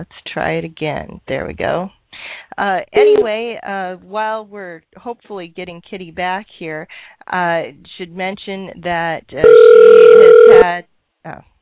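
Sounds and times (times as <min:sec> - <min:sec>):
speech: 0:00.0 - 0:11.5
telephone ringing on a call: 0:03.0 - 0:03.3, 0:09.4 - 0:10.7.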